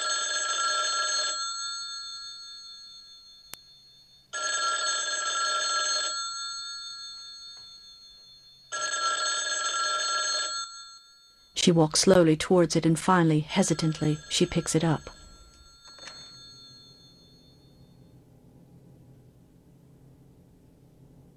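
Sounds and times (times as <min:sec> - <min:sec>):
telephone ringing with a long loud electronic trill in a kitchen: 0:00.0 - 0:11.6, 0:13.4 - 0:18.1
speech: 0:11.6 - 0:15.2.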